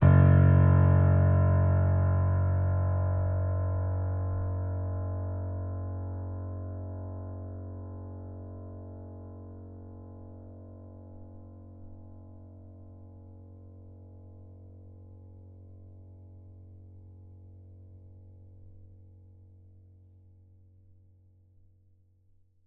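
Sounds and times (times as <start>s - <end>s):
piano note F sharp 5: 0.0s - 13.6s.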